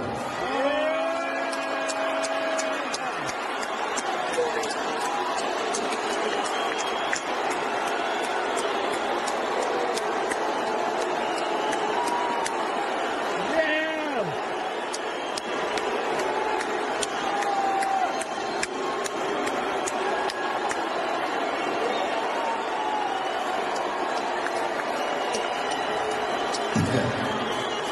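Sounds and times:
large arena crowd booing in downtown San Francisco: 0.0s - 27.9s
whistles from an arena crowd: 5.7s - 9.4s, 11.0s - 12.5s, 14.6s - 15.9s, 17.7s - 19.2s, 21.8s - 23.6s, 24.8s - 27.9s.

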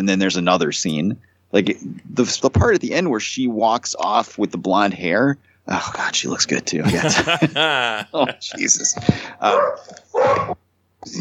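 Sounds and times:
speech: 0.0s - 11.1s
laughter: 6.8s - 9.3s
dog barking: 9.4s - 10.6s.

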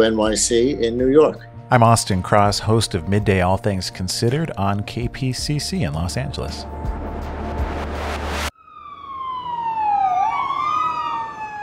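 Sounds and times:
speech: 0.0s - 7.0s
burst of broadband noise: 6.8s - 8.5s
emergency vehicle siren wailing as it passes: 6.8s - 11.6s.

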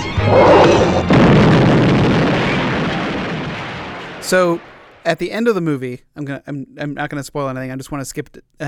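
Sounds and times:
massive explosion of an explosive charge in a mine: 0.2s - 5.1s
crashing debris and rumble of a mine caving in: 0.9s - 5.1s
speech: 4.3s - 8.6s.

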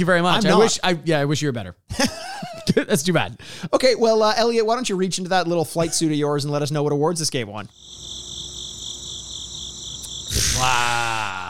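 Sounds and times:
speech: 0.0s - 2.2s, 2.8s - 8.1s, 10.6s - 11.4s
crickets chirping: 7.7s - 11.4s.

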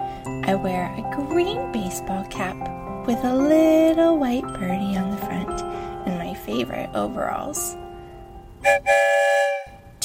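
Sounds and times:
speech: 0.5s - 5.6s, 6.5s - 7.8s, 8.6s - 9.4s
train whistle blowing as the train leaves the station: 8.6s - 10.0s.

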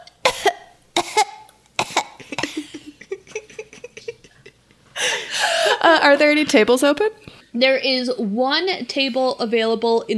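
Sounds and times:
person performing a cough as a Foley sound effect: 0.2s - 4.4s
laughter: 2.2s - 6.0s
speech: 5.8s - 10.1s.

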